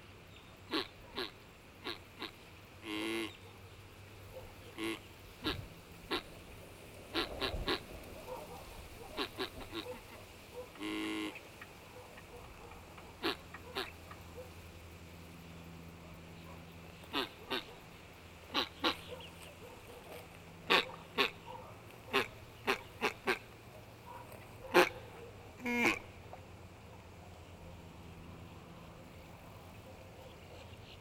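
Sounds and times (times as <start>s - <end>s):
duck hunting in the countryside: 0.7s - 3.3s, 4.8s - 6.3s, 7.1s - 14.2s, 17.1s - 17.8s, 18.5s - 26.1s.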